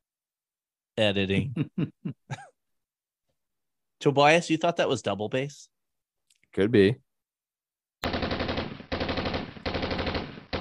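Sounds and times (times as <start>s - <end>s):
speech: 1.0s - 2.5s, 4.0s - 5.7s, 6.5s - 7.0s
rapid automatic gunfire: 8.0s - 10.5s.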